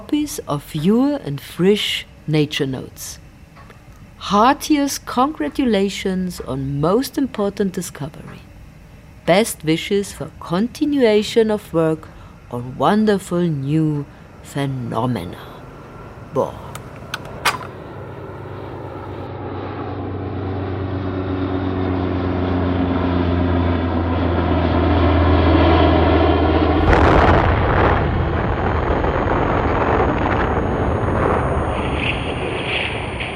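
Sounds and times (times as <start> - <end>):
speech: 0.0 - 3.2, 4.2 - 8.5, 9.3 - 15.5, 16.3 - 16.6
propeller airplane engine droning: 0.0 - 33.3
sharp clicks: 16.7 - 17.7
atomic bomb explosion dropped by an American aircraft: 26.7 - 33.3.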